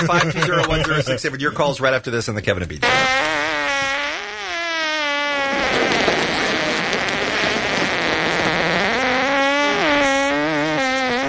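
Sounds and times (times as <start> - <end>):
laughter: 0.0 - 1.7
speech: 0.0 - 3.5
fart: 2.8 - 11.2.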